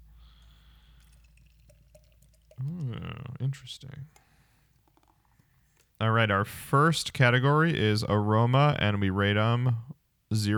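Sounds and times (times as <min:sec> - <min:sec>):
beer dripping and fizzing: 0:00.0 - 0:06.0
beer pouring into a glass: 0:00.3 - 0:03.3
speech: 0:03.5 - 0:04.2, 0:06.0 - 0:10.5.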